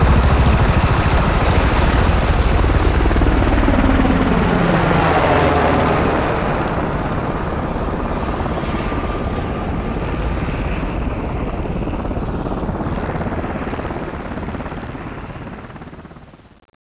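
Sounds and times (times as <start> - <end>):
Blackhawk helicopter flying off: 0.0 - 16.4.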